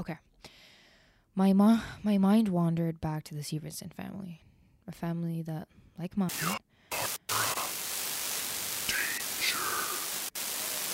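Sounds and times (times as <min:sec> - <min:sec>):
speech: 0:00.0 - 0:00.3, 0:01.4 - 0:06.6
dense steady radio static: 0:06.3 - 0:10.9.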